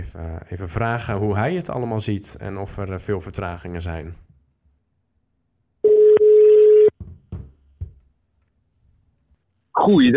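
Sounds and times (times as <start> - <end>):
speech: 0.0 - 4.2, 9.8 - 10.1
steady telephone dialing tone: 5.8 - 6.9.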